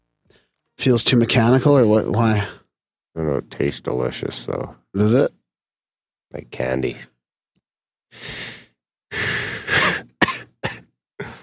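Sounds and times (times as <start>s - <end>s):
speech: 0.8s - 2.6s, 3.2s - 5.4s, 6.3s - 7.1s, 8.1s - 8.4s
sharp inhale: 8.1s - 9.7s
long breathy exhale: 8.2s - 9.8s
short raspy coughs: 9.6s - 11.4s.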